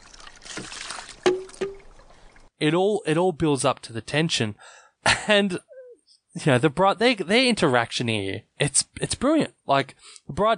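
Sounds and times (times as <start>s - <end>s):
soft trickling water of a bamboo fountain: 0.0s - 2.6s
bamboo fountain hollow wooden knocks: 1.2s - 1.8s
speech: 2.6s - 5.7s, 6.4s - 10.5s.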